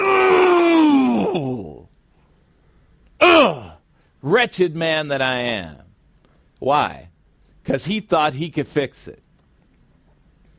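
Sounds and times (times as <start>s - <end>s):
man letting out an anguished groaning shriek: 0.0s - 1.8s, 3.2s - 3.8s
speech: 4.2s - 5.8s, 6.6s - 9.2s.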